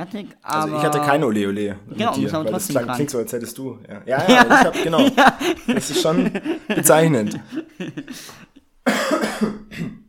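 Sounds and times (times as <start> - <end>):
speech: 0.0 - 9.6
laughter: 4.1 - 8.6
raspy throaty coughs from a tired person: 8.8 - 10.0.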